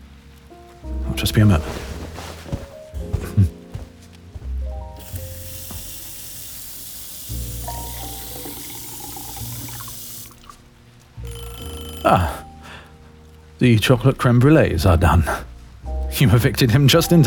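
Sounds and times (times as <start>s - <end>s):
speech: 1.2s - 1.8s, 13.6s - 15.5s, 16.2s - 17.2s
tap water pouring into a glass: 5.0s - 10.6s.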